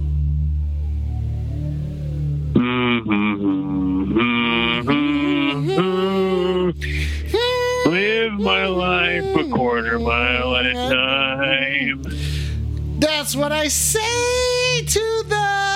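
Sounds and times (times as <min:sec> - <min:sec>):
low rumble: 0:00.0 - 0:15.7
single voice humming a short solo tune: 0:02.5 - 0:12.2
speech: 0:13.3 - 0:15.3.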